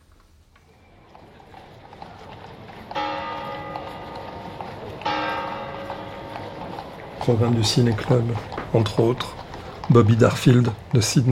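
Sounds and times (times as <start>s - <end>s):
horses and carts clip-clopping beside a church: 0.2s - 11.3s
outdoor crowd noise outside a church: 0.5s - 11.3s
church bell strikes with long humming decays: 2.9s - 8.9s
speech: 7.2s - 11.3s.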